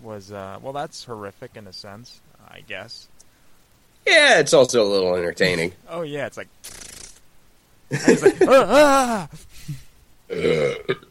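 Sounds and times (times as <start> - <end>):
speech: 0.0 - 3.2, 4.0 - 6.8, 7.9 - 11.0
laughter: 7.9 - 9.5
loud drawn-out burp: 10.3 - 11.0.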